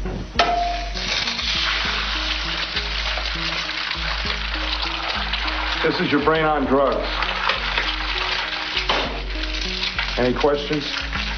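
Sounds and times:
egg sizzling in hot oil in a frying pan: 0:00.4 - 0:11.3
hot oil popping and hissing: 0:00.4 - 0:11.3
speech: 0:05.8 - 0:07.3, 0:10.2 - 0:11.1.

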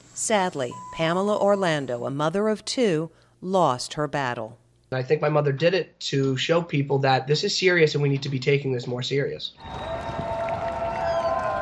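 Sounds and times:
speech: 0:00.3 - 0:10.0
crowd applauding and cheering for healthcare workers: 0:09.6 - 0:11.5.

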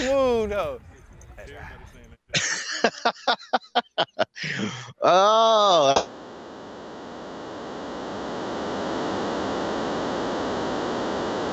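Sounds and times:
speech: 0:00.5 - 0:06.2
laughter: 0:02.3 - 0:06.0
broadband static on an audio line: 0:05.3 - 0:11.5.

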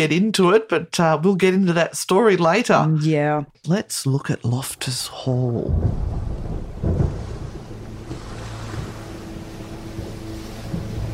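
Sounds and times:
speech: 0:00.0 - 0:06.3
rolling thunder: 0:05.5 - 0:11.1
blustery wind: 0:05.6 - 0:11.1.

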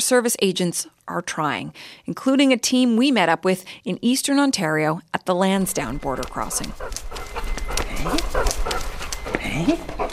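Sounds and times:
speech: 0:00.0 - 0:07.1
Labrador detector dog panting at a border crossing in Eastern Ontario: 0:05.7 - 0:10.1.

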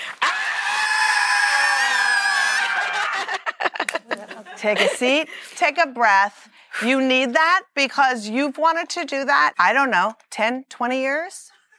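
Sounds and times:
large audience at a panel screaming together: 0:00.0 - 0:03.4
laughter: 0:02.5 - 0:05.4
speech: 0:04.6 - 0:11.5.

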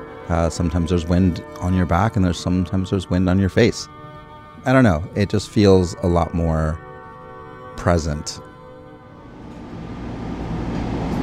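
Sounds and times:
speech: 0:00.3 - 0:04.0, 0:04.6 - 0:06.8, 0:07.8 - 0:08.5
metro train rumbling along above-ground rails heard from inside the carriage: 0:09.2 - 0:11.2.

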